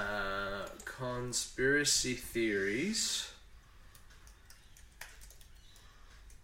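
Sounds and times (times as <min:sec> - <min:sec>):
speech: 0:01.0 - 0:03.4
typing on a wireless keyboard: 0:03.8 - 0:06.4.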